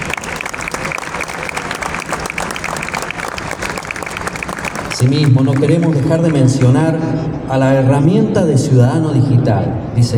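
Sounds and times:
audience applause at a Consumer Day event in San Juan: 0:00.0 - 0:06.8
speech: 0:05.0 - 0:10.1.

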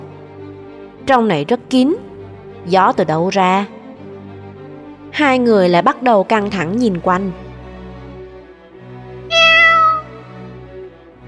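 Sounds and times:
speech: 0:01.1 - 0:03.8, 0:05.1 - 0:07.4
black cat meowing: 0:09.3 - 0:10.2.

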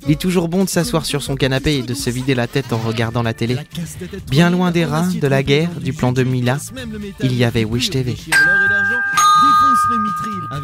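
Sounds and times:
speech: 0:00.1 - 0:10.6
doorbell chime ringing: 0:08.4 - 0:10.6.

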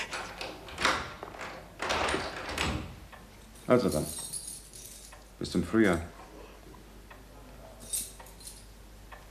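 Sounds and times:
door being locked in a house full of furniture: 0:00.1 - 0:03.0
speech: 0:03.7 - 0:04.2, 0:05.4 - 0:06.2.

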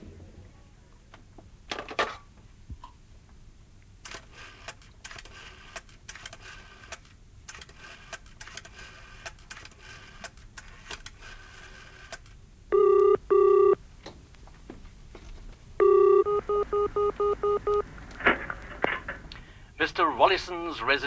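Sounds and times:
public call box telephone tones: 0:12.7 - 0:13.8, 0:15.8 - 0:17.9
speech: 0:20.2 - 0:21.0.

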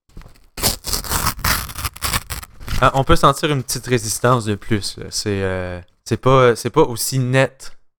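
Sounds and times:
crepe paper being torn slowly: 0:00.3 - 0:03.1
speech: 0:02.8 - 0:07.8.

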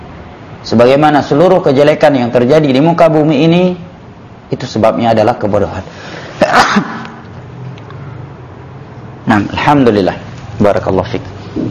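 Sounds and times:
speech: 0:00.6 - 0:03.8, 0:04.5 - 0:07.0, 0:09.3 - 0:11.6
man sneezing during an online religious lesson: 0:06.4 - 0:07.2.

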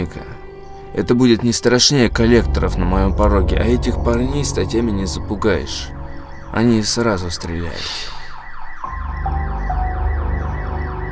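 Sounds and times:
speech: 0:00.9 - 0:08.2
car alarm wailing at a neighbouring house: 0:05.9 - 0:11.1.

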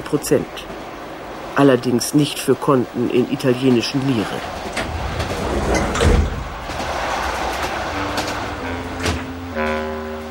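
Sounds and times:
train rumbling: 0:00.0 - 0:10.2
speech: 0:00.1 - 0:00.8, 0:01.6 - 0:04.7
train compartment sliding door pushed open: 0:04.4 - 0:09.4.

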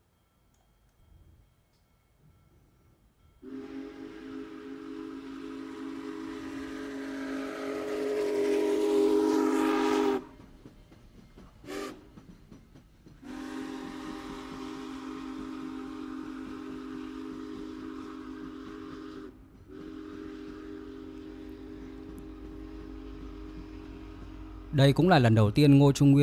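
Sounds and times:
train whistle blasts: 0:03.4 - 0:10.4, 0:11.6 - 0:12.1, 0:13.2 - 0:24.8
speech: 0:24.8 - 0:26.2.

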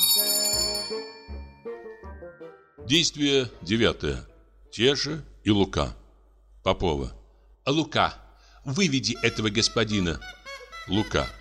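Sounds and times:
bell ringing: 0:00.0 - 0:02.6
speech: 0:02.9 - 0:06.0, 0:06.6 - 0:11.3.

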